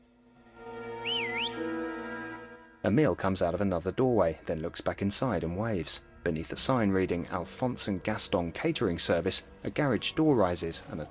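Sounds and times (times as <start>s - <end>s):
milkman whistling in an alleyway: 1.0s - 1.6s
speech: 2.8s - 11.0s.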